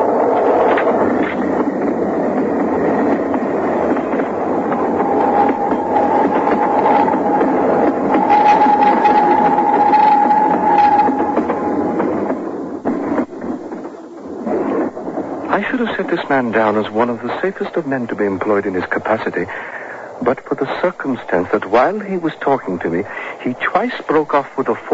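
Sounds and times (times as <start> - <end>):
train rumbling past: 0.0 - 24.9
sustained whining tone of a passing train: 3.7 - 12.6
speech: 16.3 - 24.9.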